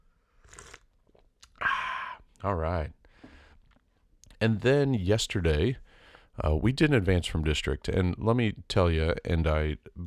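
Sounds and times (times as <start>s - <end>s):
person slurping coffee: 0.4s - 2.2s
speech: 2.4s - 3.0s, 4.4s - 5.8s, 6.4s - 10.0s.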